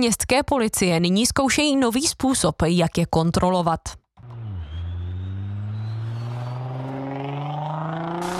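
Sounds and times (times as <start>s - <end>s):
speech: 0.0s - 4.0s
vehicle engine accelerating along a main road in the Tylovice district: 4.2s - 8.3s.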